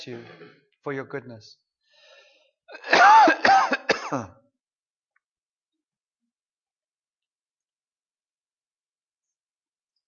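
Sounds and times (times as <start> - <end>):
speech: 0.0 - 1.7, 4.1 - 4.4
ill person giving harsh voiced coughs: 2.7 - 4.4.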